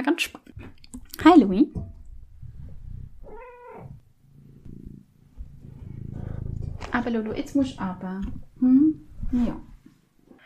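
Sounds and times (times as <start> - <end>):
speech: 0.1 - 0.4, 1.2 - 1.9, 7.0 - 9.7
cat purring: 1.8 - 9.8
cat meowing: 3.2 - 4.0.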